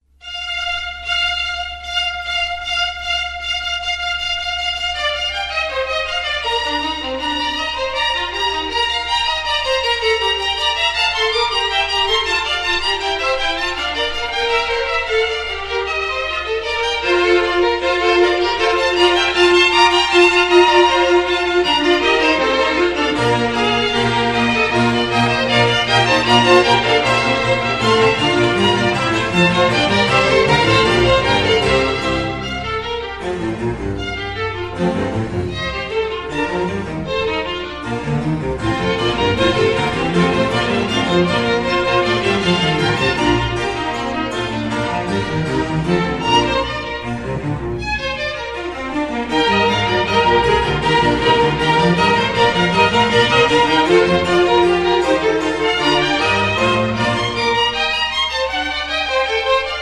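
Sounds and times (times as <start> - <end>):
Baroque fugue: 0.0 - 59.7.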